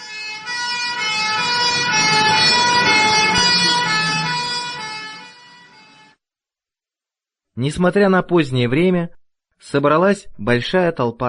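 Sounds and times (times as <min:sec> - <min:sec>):
ambulance siren wailing: 0:00.0 - 0:06.2
low vehicle rumble: 0:00.3 - 0:06.0
speech: 0:07.6 - 0:11.2.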